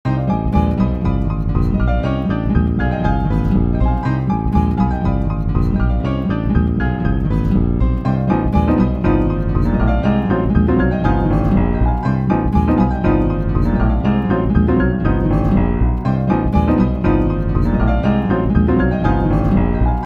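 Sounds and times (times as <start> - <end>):
intense chase piano music: 0.1 - 20.0.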